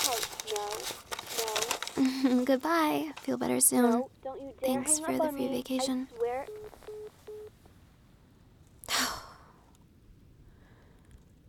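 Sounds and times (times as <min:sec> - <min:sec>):
crinkling and crackling bursts faking a bad phone connection: 0:00.0 - 0:07.9
speech: 0:02.0 - 0:06.8.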